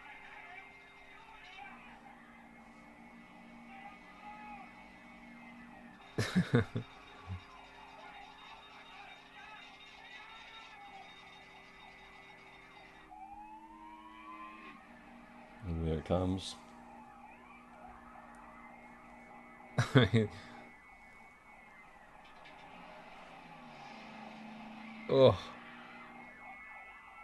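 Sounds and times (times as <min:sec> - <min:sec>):
emergency vehicle siren wailing: 0:00.0 - 0:27.2
speech: 0:06.2 - 0:06.9, 0:16.1 - 0:16.6, 0:19.9 - 0:20.5, 0:25.1 - 0:25.6
laughter: 0:06.2 - 0:07.4, 0:19.8 - 0:20.6.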